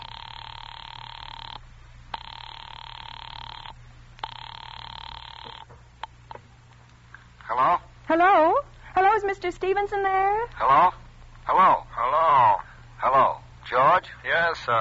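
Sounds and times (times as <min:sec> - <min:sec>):
telephone ring tone through a handset line: 0:00.0 - 0:06.4
low constant hum on a telephone line: 0:00.0 - 0:14.8
speech: 0:07.6 - 0:12.5, 0:13.1 - 0:14.8.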